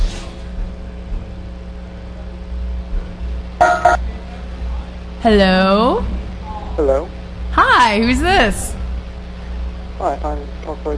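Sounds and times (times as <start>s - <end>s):
low steady rumble: 0.0s - 10.9s
single short electronic ringing chime: 3.6s - 4.0s
speech: 5.2s - 6.1s, 7.8s - 8.8s, 10.0s - 10.9s.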